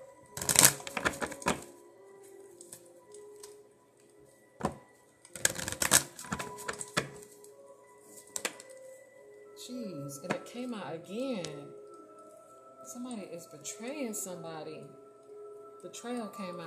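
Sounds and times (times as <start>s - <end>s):
tarot cards being shuffled: 0.4s - 1.7s, 4.6s - 7.3s
quieter card handling sounds: 0.4s - 3.6s, 4.6s - 9.0s
speech: 9.7s - 11.8s, 12.9s - 15.0s, 15.8s - 16.6s.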